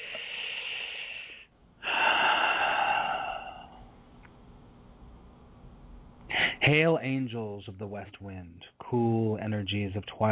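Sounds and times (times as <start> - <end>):
deep breathing during a guided invocation: 0.0 - 3.9, 6.3 - 6.7
speech: 6.7 - 10.3.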